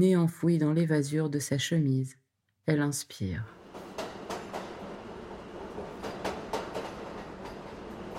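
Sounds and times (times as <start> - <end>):
speech: 0.0 - 3.6
subway train rumbling: 3.6 - 8.1
subway train wheels clacking over rail joints: 3.6 - 8.1.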